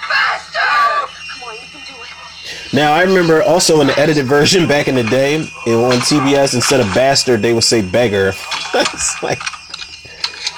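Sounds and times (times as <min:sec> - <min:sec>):
woman screaming in high-pitched bursts: 0:00.0 - 0:01.9
laughter: 0:00.0 - 0:10.5
speech: 0:02.7 - 0:09.6.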